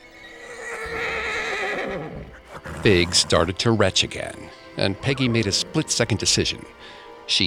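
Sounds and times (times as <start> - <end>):
stallion whinnying: 0.0 - 3.6
speech: 2.8 - 7.4.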